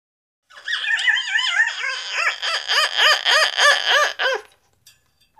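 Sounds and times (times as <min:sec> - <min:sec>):
macaw squawking: 0:00.5 - 0:04.5.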